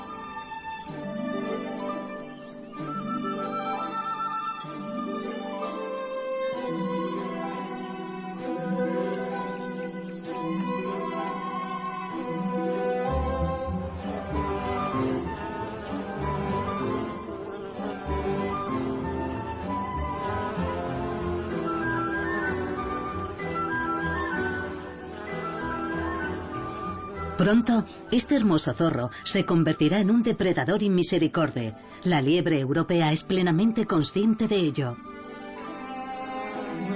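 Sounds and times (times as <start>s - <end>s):
steady tonal insect buzzing: 0.0s - 28.2s, 35.0s - 36.9s
crickets chirping in a dense chorus: 0.0s - 32.1s, 33.2s - 36.9s
speech: 27.4s - 35.1s.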